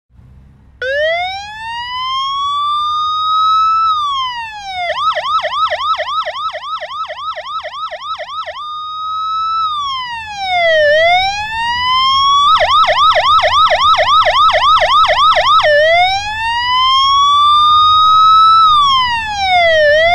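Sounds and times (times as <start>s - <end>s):
police motorcycle siren: 0.8s - 20.1s.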